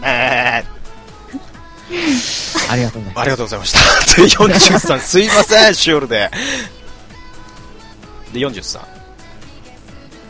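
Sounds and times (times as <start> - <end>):
man imitating a goat's bleat: 0.0 - 0.7
speech: 2.7 - 6.7, 8.4 - 9.0
laughter: 3.7 - 5.8.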